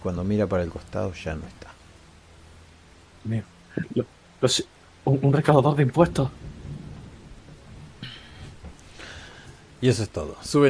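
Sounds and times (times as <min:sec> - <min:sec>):
speech: 0:00.0 - 0:01.8, 0:03.2 - 0:06.6, 0:09.8 - 0:10.6
rain: 0:00.0 - 0:10.6
rolling thunder: 0:05.8 - 0:10.2.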